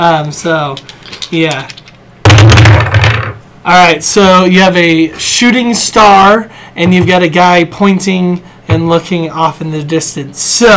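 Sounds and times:
speech: 0.0s - 1.8s, 3.6s - 10.7s
dice being rolled: 0.7s - 3.3s.

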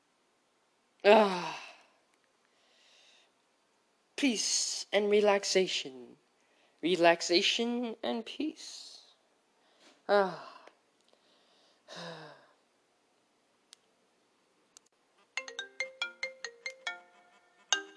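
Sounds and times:
speech: 1.0s - 1.5s, 4.2s - 6.2s, 6.8s - 8.9s, 10.1s - 10.5s, 11.9s - 12.4s
person sighing breathily: 1.1s - 1.9s, 9.8s - 12.6s
melodic electronic phone ringtone: 15.4s - 17.9s.

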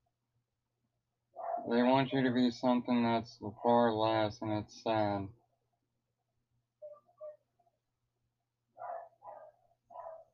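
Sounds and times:
dog barking: 1.4s - 1.8s, 8.8s - 10.3s
speech: 1.6s - 5.4s.

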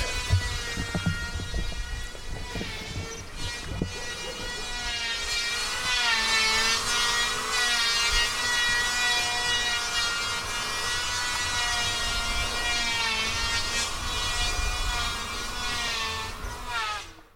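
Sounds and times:
knocks: 0.0s - 3.9s
low rumbling machinery: 0.0s - 7.3s
circular saws cutting through wood: 0.0s - 17.3s.

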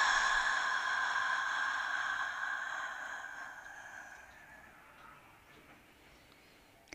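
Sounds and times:
breathy exhale through the mouth during a lying-down guided relaxation meditation: 0.0s - 5.4s.

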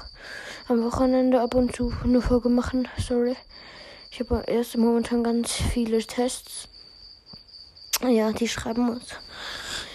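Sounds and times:
high-pitched cricket trill: 0.0s - 9.9s
speech: 0.7s - 6.7s, 8.0s - 9.6s.

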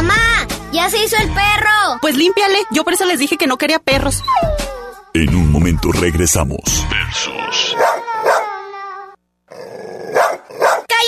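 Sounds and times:
speech: 0.8s - 7.9s
dog whining: 4.1s - 5.1s, 7.7s - 8.6s, 9.5s - 10.9s
dog barking: 7.8s - 8.5s, 10.0s - 10.9s.

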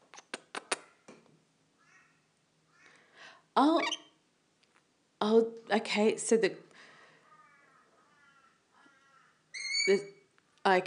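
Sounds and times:
speech: 3.6s - 4.0s, 5.3s - 6.7s, 9.9s - 10.1s, 10.7s - 10.8s
crow cawing outside: 7.2s - 9.5s.

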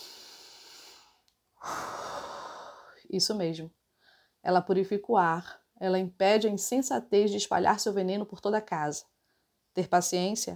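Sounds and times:
deep human breath: 0.0s - 3.1s, 3.9s - 4.4s
speech: 3.1s - 3.8s, 4.4s - 9.1s, 9.8s - 10.5s.

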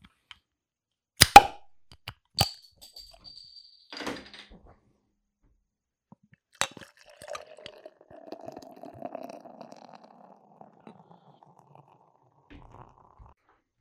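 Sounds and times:
pop: 1.2s - 1.7s
beer pouring into a glass: 6.6s - 13.4s.

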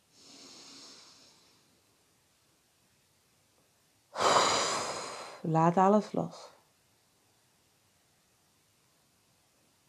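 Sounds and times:
slow airy inhale during a guided relaxation breathing exercise: 0.0s - 1.8s, 4.1s - 5.5s
louder forceful exhale during a guided relaxation breathing exercise: 0.1s - 1.6s, 4.1s - 5.4s
speech: 5.4s - 6.5s.

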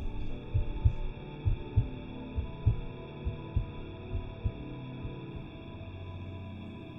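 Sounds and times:
muffled heartbeat: 0.0s - 5.6s.

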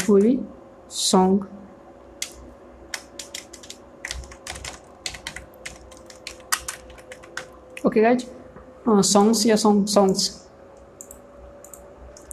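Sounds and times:
speech: 0.1s - 1.6s, 7.8s - 10.5s
typing a keyword on a computer keyboard: 2.2s - 7.8s, 11.0s - 12.3s.

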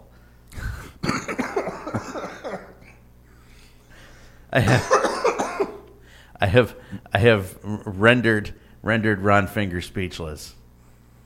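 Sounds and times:
wet coughing up phlegm: 0.9s - 3.1s, 4.6s - 6.0s
speech: 4.5s - 5.0s, 6.4s - 10.6s.

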